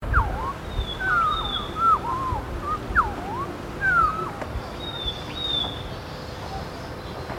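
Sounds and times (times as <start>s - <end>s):
soft background hiss: 0.0s - 7.2s
leaden flycatcher whistled calls in Papua New Guinea: 0.1s - 5.8s.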